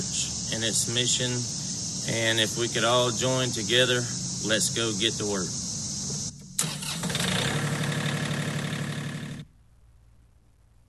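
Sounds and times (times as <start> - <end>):
speech: 0.0 - 5.6
tractor engine starting and idling: 6.1 - 9.5.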